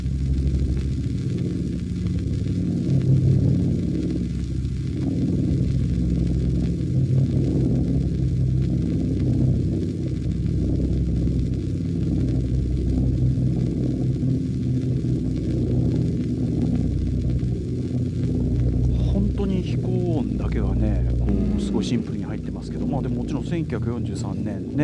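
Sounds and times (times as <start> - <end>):
Boeing B-17 heavy bomber piston engines droning at 3000 metres altitude: 0.2 - 24.8
speech: 23.7 - 24.8.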